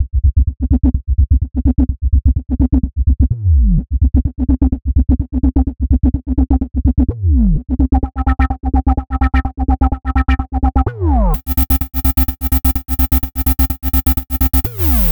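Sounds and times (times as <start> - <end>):
127 cm bass: 0.0 - 15.0.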